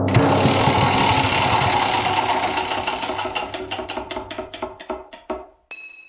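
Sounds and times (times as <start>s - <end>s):
game show prize wheel spinning with ratcheting clicks: 0.0s - 6.0s.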